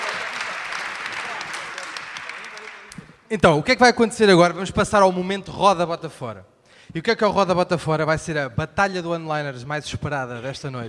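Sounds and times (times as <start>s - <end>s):
audience applause at a live stage show: 0.0s - 3.0s
speech: 3.3s - 10.8s.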